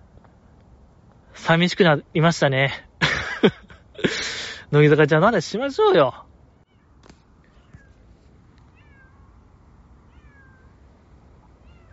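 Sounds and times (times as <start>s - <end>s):
steady hiss: 0.0s - 11.9s
speech: 1.5s - 6.3s
laughter: 3.0s - 4.4s
cat meowing: 6.5s - 8.0s, 8.6s - 9.4s, 10.0s - 10.8s, 11.5s - 11.9s.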